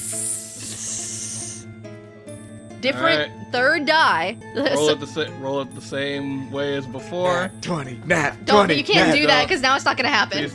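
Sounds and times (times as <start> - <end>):
person mimicking snakes with a voiced hiss and rattle: 0.0 - 1.7
speech: 2.8 - 10.5.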